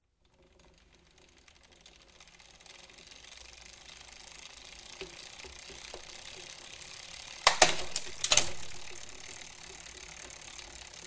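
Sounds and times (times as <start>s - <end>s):
pedal pressing and gear shifting: 7.4s - 10.4s.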